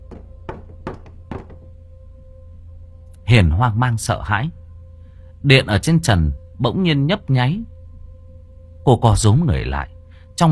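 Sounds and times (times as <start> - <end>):
rattling knocks on a wall: 0.0 - 1.7
speech: 3.3 - 4.6, 5.4 - 7.7, 8.8 - 10.4.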